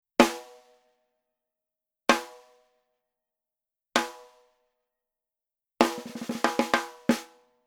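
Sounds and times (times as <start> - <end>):
snare drum rim shot: 5.8 - 7.3.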